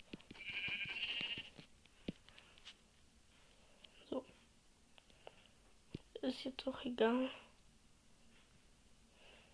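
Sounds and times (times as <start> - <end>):
steady tapping footsteps: 0.0 - 2.8
sheep bleating in a video game: 0.4 - 1.5
speech: 6.3 - 7.4.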